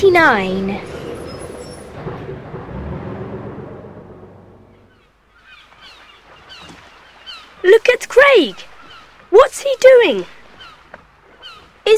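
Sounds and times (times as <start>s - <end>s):
speech: 0.0s - 0.9s, 7.6s - 8.7s, 9.3s - 10.4s
bus heavy engine rumble: 0.0s - 4.9s.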